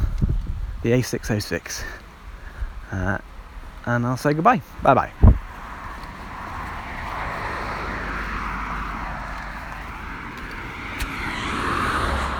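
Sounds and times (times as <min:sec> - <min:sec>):
speech: 0:00.8 - 0:02.0, 0:02.9 - 0:05.3
tractor engine rumbling past on a road: 0:05.5 - 0:12.3.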